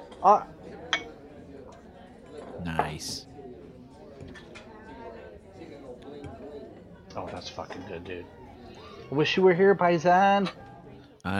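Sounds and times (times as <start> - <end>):
murmured voices: 0.0 - 11.3
speech: 0.2 - 0.5, 2.6 - 3.3, 7.2 - 8.4, 9.1 - 10.6
glass clinking: 0.9 - 1.2.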